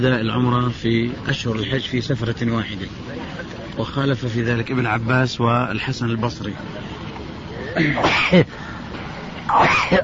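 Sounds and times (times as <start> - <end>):
speech: 0.0 - 7.0, 7.7 - 8.6, 9.5 - 10.0
person sneezing: 9.5 - 10.0.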